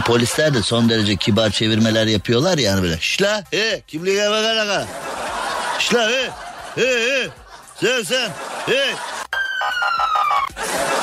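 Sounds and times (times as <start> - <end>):
laughter: 0.0 - 1.8, 4.6 - 9.6, 10.2 - 11.0
speech: 0.1 - 5.2, 5.8 - 9.1
police car siren wail: 9.3 - 10.6.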